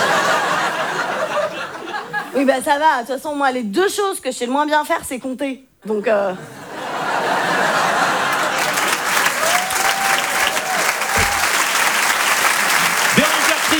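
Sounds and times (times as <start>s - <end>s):
laughter: 0.0s - 2.5s, 6.4s - 13.7s
speech: 2.4s - 6.6s
comedy club audience applause: 7.6s - 13.7s.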